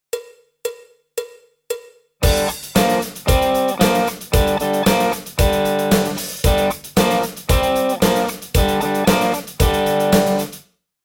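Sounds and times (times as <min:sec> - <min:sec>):
rock lick on electric guitar: 0:02.2 - 0:10.6.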